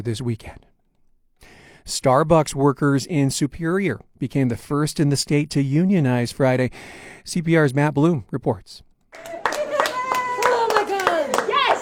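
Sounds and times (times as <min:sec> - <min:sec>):
speech: 0:00.0 - 0:00.7, 0:01.4 - 0:09.4
coffee shop workers clapping in a store lobby: 0:09.1 - 0:11.8
coffee shop workers cheering in a store lobby: 0:09.2 - 0:11.8
high whooping shout: 0:09.2 - 0:11.8.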